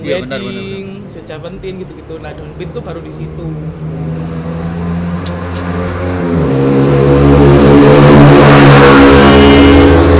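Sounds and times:
speech: 0.0 - 4.6
motorbike engine revving past: 3.6 - 10.1.

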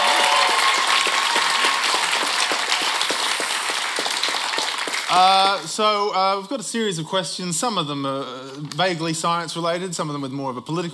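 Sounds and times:
crowd applauding quiz contestants: 0.0 - 5.7
speech: 5.1 - 10.9.

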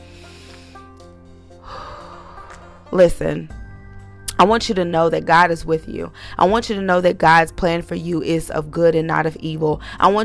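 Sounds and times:
deep breath: 0.0 - 0.9, 1.5 - 2.9, 6.1 - 6.4
speech: 2.9 - 3.6, 4.4 - 10.2.

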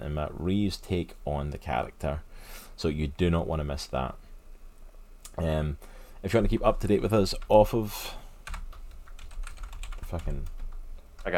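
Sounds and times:
speech: 0.0 - 4.2, 5.4 - 8.2, 10.1 - 10.6
typing on a computer keyboard: 8.4 - 11.3.

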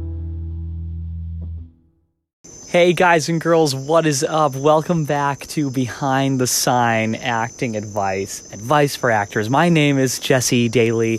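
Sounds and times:
nighttime insects and frogs chirping: 2.4 - 11.1
speech: 2.7 - 11.1.

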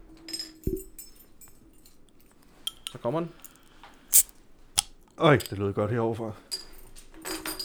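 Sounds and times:
light clinking of glass: 2.7 - 4.3
glass cider bottle cap popping open: 2.7 - 5.6
speech: 3.0 - 3.4, 5.2 - 6.4.

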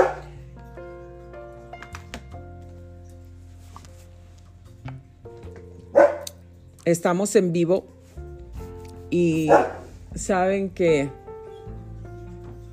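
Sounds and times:
small dog barking: 0.0 - 0.3, 6.0 - 6.4, 9.5 - 9.9
speech: 6.8 - 8.0, 9.1 - 11.2.

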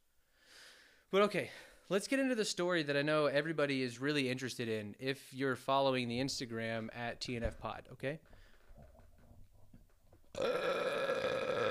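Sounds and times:
speech: 1.1 - 8.9, 10.4 - 10.8
long loud resonant burp: 10.3 - 11.7.

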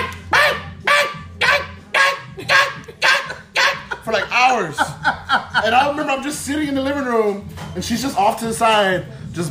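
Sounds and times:
person imitating a small female chihuahua barking: 0.0 - 4.0
laughter: 1.9 - 6.5
speech: 4.1 - 5.0, 5.6 - 9.4.

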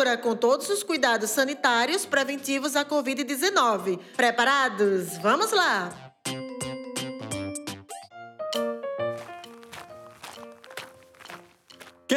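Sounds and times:
speech: 0.0 - 6.0
running footsteps of someone running to a bus stop: 9.1 - 12.1.

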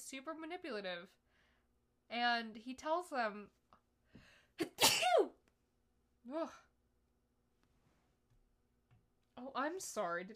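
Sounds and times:
speech: 0.1 - 1.3, 2.1 - 5.4, 6.2 - 6.7, 9.4 - 10.3
person sneezing into elbow: 4.6 - 5.4.

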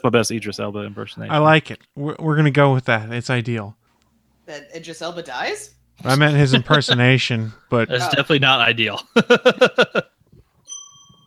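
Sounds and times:
speech: 0.0 - 3.8, 4.5 - 10.1
laughter: 6.1 - 10.2
bell ringing: 10.7 - 11.2.

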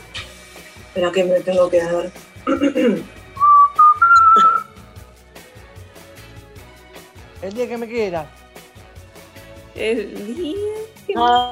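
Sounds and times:
speech: 1.0 - 3.2, 7.4 - 8.4, 9.8 - 11.4
person whistling a short melodic phrase: 3.4 - 4.8.

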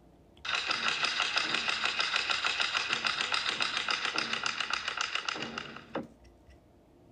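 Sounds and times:
two wood blocks struck on a stage floor in Japanese theatre: 0.5 - 6.1.

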